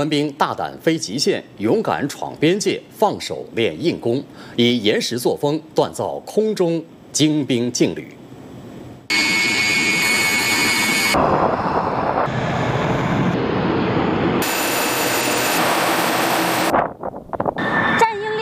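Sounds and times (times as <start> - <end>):
speech: 0.0 - 8.2, 11.2 - 11.4
J-11B fighter jet engines roaring: 9.1 - 16.8, 17.6 - 18.4.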